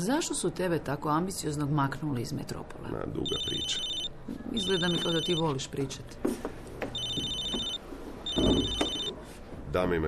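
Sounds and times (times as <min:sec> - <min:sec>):
speech: 0:00.0 - 0:06.6, 0:09.7 - 0:10.0
low noise: 0:00.0 - 0:10.0
telephone ringing with electronic trills: 0:03.3 - 0:05.6, 0:06.9 - 0:09.2.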